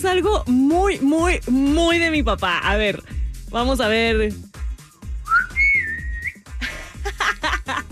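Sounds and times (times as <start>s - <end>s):
speech: 0.1s - 4.5s
father's family whistle call in a phone message recording: 5.2s - 6.5s
laughter: 6.6s - 7.9s.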